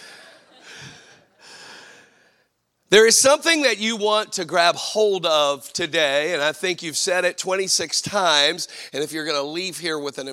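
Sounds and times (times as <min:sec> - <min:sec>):
heavy labored breathing after exertion: 0:00.0 - 0:02.4
speech: 0:02.9 - 0:10.3.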